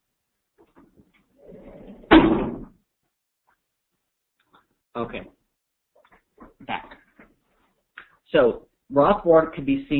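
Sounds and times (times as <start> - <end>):
door closing with a thud: 2.0 - 2.8
speech: 5.0 - 5.4, 6.6 - 7.0, 8.3 - 9.9.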